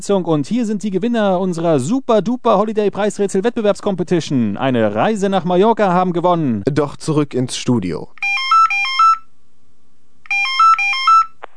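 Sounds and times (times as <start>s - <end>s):
speech: 0.0s - 8.4s
telephone at a fun center ringing with a warbling electronic tone: 8.2s - 9.3s, 10.3s - 11.5s.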